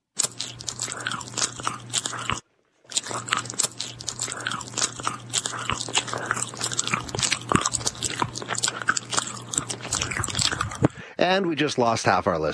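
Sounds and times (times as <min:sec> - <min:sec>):
loud chewing and crunching while eating: 0:00.0 - 0:11.1
low steady hum: 0:00.2 - 0:11.1
speech: 0:11.3 - 0:12.5.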